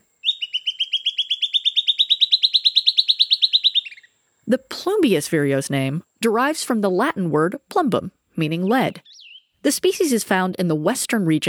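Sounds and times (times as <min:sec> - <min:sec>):
Silvered Antbird song trill of sharp chipping notes in the Amazon rainforest: 0:00.0 - 0:05.7, 0:08.6 - 0:09.7
speech: 0:04.5 - 0:11.4.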